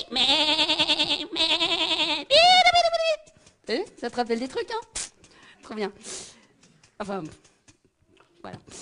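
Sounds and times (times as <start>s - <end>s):
sheep and goats bleating: 0.1s - 2.6s
speech: 4.0s - 5.0s, 5.7s - 6.2s, 7.0s - 7.5s, 8.4s - 8.7s.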